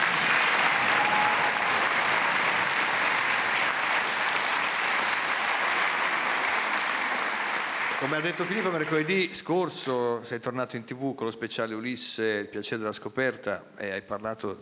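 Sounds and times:
audience applause: 0.0s - 9.2s
speech: 8.0s - 14.6s.

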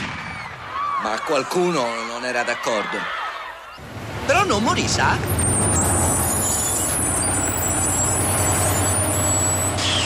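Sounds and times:
speech: 1.0s - 3.2s, 4.3s - 5.9s
bus engine rumbling low and steady: 3.8s - 10.0s.

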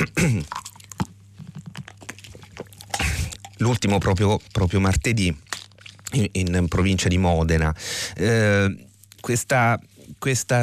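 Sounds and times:
gulping swallow: 0.0s - 4.1s
person sipping water with slurps and lip clicks: 0.0s - 6.9s
faint steady hum: 0.0s - 10.6s
speech: 3.6s - 5.5s, 6.1s - 10.6s.

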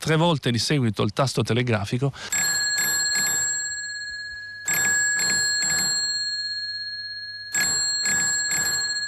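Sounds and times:
speech: 0.0s - 2.5s
small bright metallic bell ringing: 2.3s - 9.0s.

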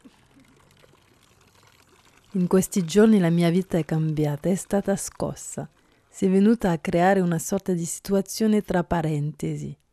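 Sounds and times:
water flowing and splashing in a public fountain: 0.0s - 6.0s
speech: 2.3s - 9.8s.

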